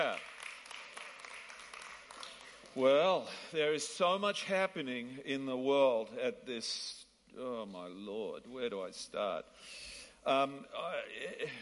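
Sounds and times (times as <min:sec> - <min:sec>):
crowd clapping hands: 0:00.0 - 0:03.3
speech: 0:02.8 - 0:11.5.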